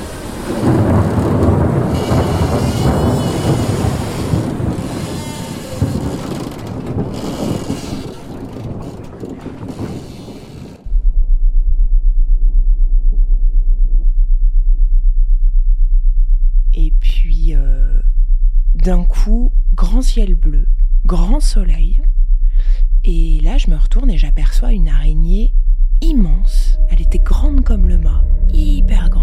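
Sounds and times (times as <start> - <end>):
storm waves crashing against the hull of a pirate ship in bad weather: 0.0 - 10.9
steady low droning hum: 0.0 - 29.2
speech: 20.2 - 22.0, 23.0 - 29.2.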